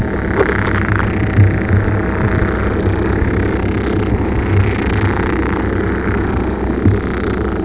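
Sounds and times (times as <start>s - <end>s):
pick frog croaking: 0.0s - 7.6s.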